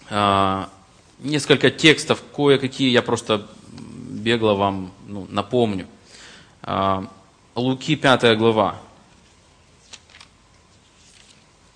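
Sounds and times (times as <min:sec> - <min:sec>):
speech: 0:00.1 - 0:06.0, 0:06.6 - 0:08.9
church audience rustling book pages: 0:09.1 - 0:11.7.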